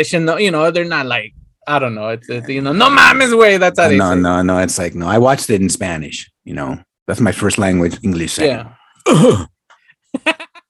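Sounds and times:
speech: 0:00.0 - 0:09.5
person imitating a cough from a comedy western film: 0:09.0 - 0:09.6.

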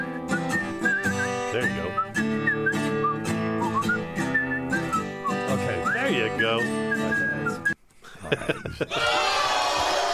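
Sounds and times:
person whistling a short tune: 0:00.0 - 0:07.8
speech: 0:01.6 - 0:02.1, 0:06.3 - 0:06.9, 0:08.5 - 0:09.4
laughter: 0:08.0 - 0:09.3.

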